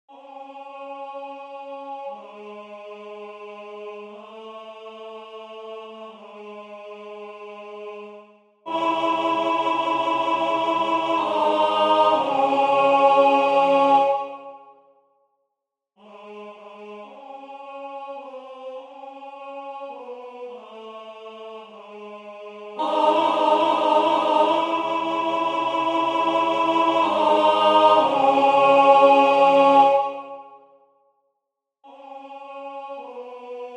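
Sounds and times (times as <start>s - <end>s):
tenor singing: 8.7s - 14.5s, 22.8s - 30.4s.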